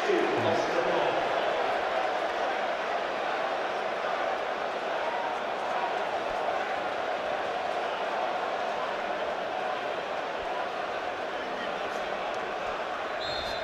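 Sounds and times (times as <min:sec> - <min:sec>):
large stadium crowd roaring and cheering: 0:00.0 - 0:13.6.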